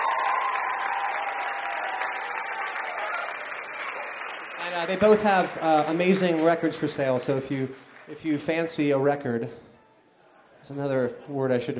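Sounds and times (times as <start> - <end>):
audience applause: 0.0 - 8.6
speech: 4.7 - 9.6, 10.7 - 11.7.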